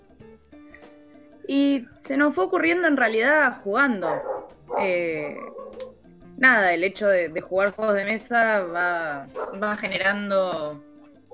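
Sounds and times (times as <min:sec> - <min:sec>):
speech: 0:01.5 - 0:05.6, 0:06.4 - 0:10.9
dogs yipping and whining: 0:04.0 - 0:06.0, 0:09.3 - 0:09.6.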